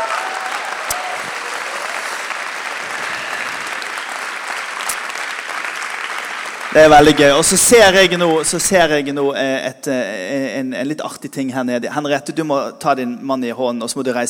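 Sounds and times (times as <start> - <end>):
audience applause in a hall: 0.0 - 8.9
speech: 6.8 - 14.2.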